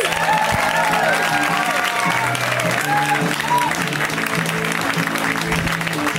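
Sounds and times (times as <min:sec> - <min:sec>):
whoops and cheers from a live crowd: 0:00.0 - 0:03.9
live crowd applauding for the host: 0:00.0 - 0:06.1.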